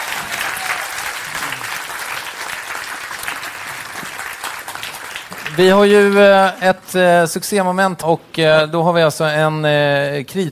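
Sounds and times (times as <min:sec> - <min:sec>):
audience applause: 0:00.0 - 0:06.6
speech: 0:05.6 - 0:10.5.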